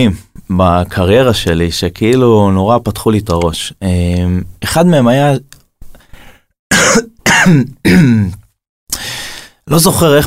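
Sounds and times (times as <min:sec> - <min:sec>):
speech: 0:00.0 - 0:05.5, 0:06.9 - 0:08.4, 0:09.0 - 0:10.2
man coughing: 0:06.7 - 0:08.4.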